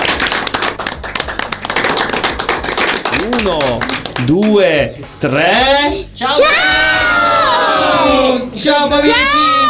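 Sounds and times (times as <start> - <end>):
group of people clapping: 0.0 - 4.6
speech: 3.4 - 7.1, 7.8 - 9.6.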